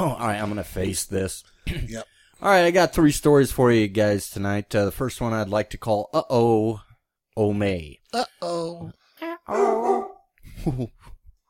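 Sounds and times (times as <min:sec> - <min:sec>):
speech: 0:00.0 - 0:06.8, 0:07.4 - 0:11.0
dog barking and yowling: 0:09.5 - 0:10.3.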